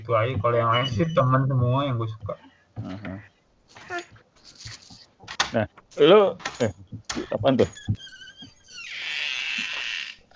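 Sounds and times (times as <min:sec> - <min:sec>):
soft low thumps: 0:00.0 - 0:03.4, 0:05.2 - 0:08.7
speech: 0:00.1 - 0:04.7, 0:05.5 - 0:08.0
door opening with a creaky squeal: 0:00.2 - 0:01.8, 0:05.3 - 0:10.3.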